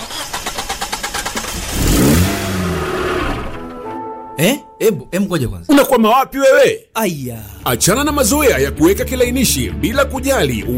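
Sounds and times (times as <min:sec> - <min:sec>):
car starter cranking: 0:00.0 - 0:03.8
speech: 0:04.4 - 0:10.7.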